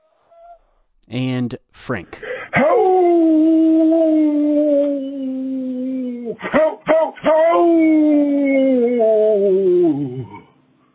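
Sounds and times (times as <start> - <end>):
speech: 1.0 - 3.0
person imitating a coyote howl in a coyote calling contest: 2.5 - 10.5.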